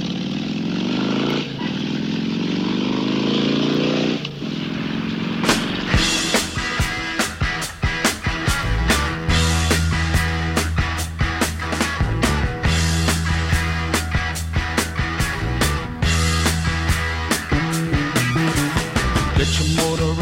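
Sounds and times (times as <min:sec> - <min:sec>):
motorcycle engine roaring: 0:00.0 - 0:20.1
sharp rhythmic pulses: 0:05.4 - 0:20.1.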